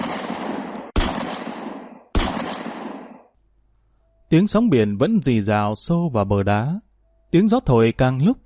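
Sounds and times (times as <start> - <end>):
gunshots at night by the sea: 0.0 - 3.3
speech: 4.3 - 8.4.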